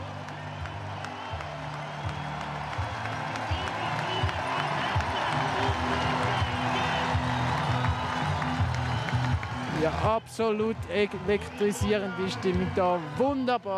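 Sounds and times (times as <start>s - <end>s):
large crowd of fans cheering and clapping: 0.0s - 13.7s
speech: 9.8s - 13.7s.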